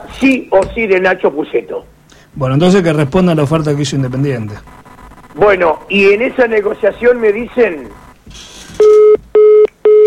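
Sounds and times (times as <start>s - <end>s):
speech: 0.0s - 4.8s, 5.4s - 9.2s
phone line busy tone beeps after a cut-off call: 4.2s - 8.2s, 8.8s - 10.0s.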